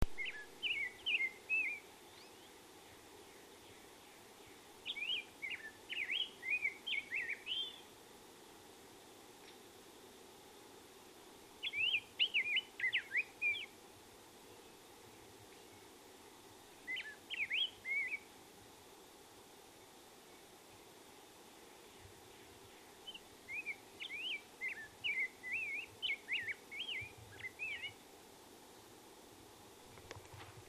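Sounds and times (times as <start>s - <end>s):
grosbeak calling: 0.2s - 2.5s, 4.8s - 7.8s, 11.6s - 13.7s, 16.8s - 18.2s, 23.0s - 28.0s.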